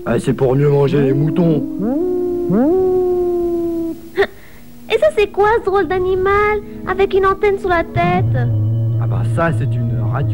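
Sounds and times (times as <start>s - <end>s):
speech: 0.0s - 3.0s, 5.0s - 10.3s
wolf howling: 0.0s - 4.3s.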